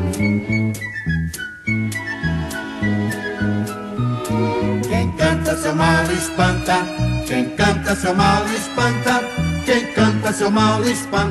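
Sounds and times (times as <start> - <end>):
bouncy instrumental backing with steady bass and light percussion: 0.0 - 11.3
person whistling a simple descending tune: 0.1 - 4.4
speech: 0.2 - 1.0, 5.7 - 11.3.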